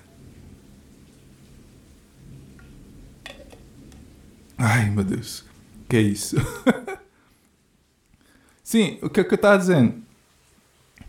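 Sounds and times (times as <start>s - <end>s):
thunder from a nearby lightning strike rumbling: 0.0s - 7.9s
rain falling: 0.0s - 11.0s
speech: 4.6s - 6.9s, 8.7s - 10.0s
laughter: 6.3s - 7.0s.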